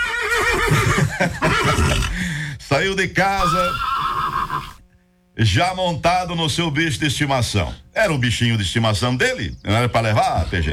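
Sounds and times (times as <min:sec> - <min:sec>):
horse neighing: 0:00.0 - 0:02.2, 0:03.4 - 0:04.9
speech: 0:02.8 - 0:03.9, 0:05.4 - 0:10.7.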